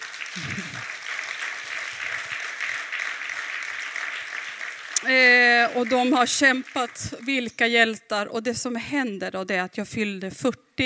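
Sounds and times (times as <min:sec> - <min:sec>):
audience applause: 0:00.0 - 0:07.5
low voice murmur: 0:00.4 - 0:00.9
speech: 0:05.0 - 0:10.8.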